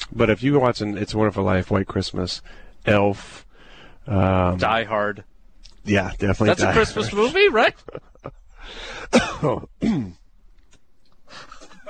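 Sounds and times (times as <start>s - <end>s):
speech: 0.2s - 10.2s
quiet breathing: 2.4s - 4.1s, 8.5s - 9.2s, 11.2s - 11.8s
sick person coughing: 9.1s - 10.2s.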